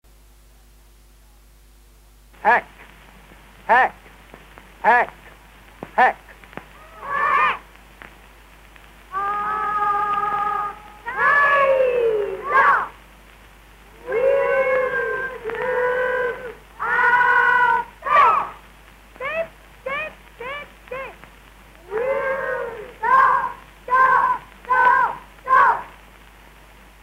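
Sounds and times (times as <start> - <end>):
speech: 2.4 - 2.8, 3.7 - 4.0, 4.8 - 5.2, 6.0 - 6.2
Cub Scout boy howling like a wolf: 6.8 - 7.6, 9.1 - 13.0, 14.0 - 18.6, 21.8 - 25.8.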